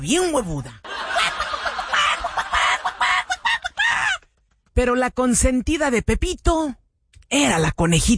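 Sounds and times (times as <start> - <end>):
speech: 0.0 - 0.9, 4.8 - 8.1
laughter: 0.8 - 4.3
hen clucking and squawking: 1.7 - 4.3.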